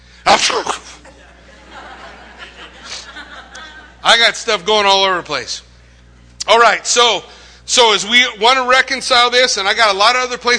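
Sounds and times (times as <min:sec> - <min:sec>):
speech: 0:00.2 - 0:00.8, 0:04.1 - 0:05.7, 0:06.5 - 0:10.5
person mimicking a sneeze: 0:00.3 - 0:01.0
laughter: 0:00.8 - 0:04.3.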